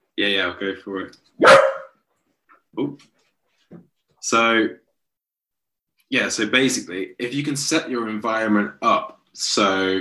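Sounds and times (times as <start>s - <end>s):
speech: 0.2s - 1.6s, 2.8s - 4.8s, 6.1s - 10.0s
dog barking and yelping: 1.4s - 2.0s.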